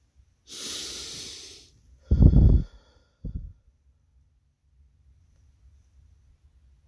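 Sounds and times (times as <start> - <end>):
slow deep breathing in and out: 0.5 - 3.6.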